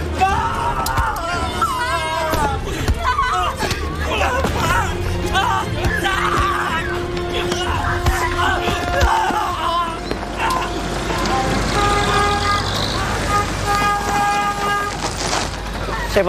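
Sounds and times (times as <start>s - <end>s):
rumbling crowded street din: 0.0s - 16.2s
car horn of an insurance department car honking: 8.2s - 15.5s.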